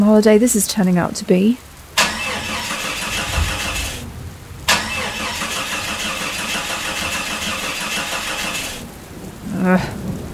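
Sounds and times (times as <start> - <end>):
speech: 0.1 - 1.7, 9.6 - 10.0
car engine in England cranking without catching: 2.0 - 8.9.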